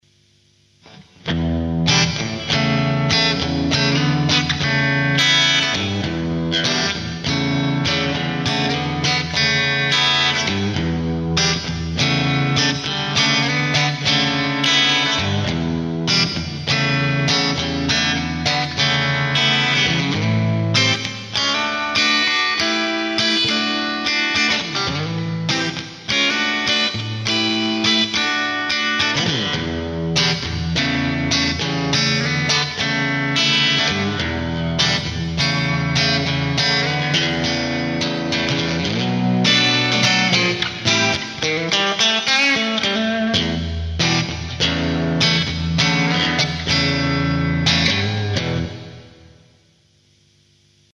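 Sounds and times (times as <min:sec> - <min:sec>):
Stratocaster electric guitar playing on bridge pickup: 0:00.5 - 0:50.9.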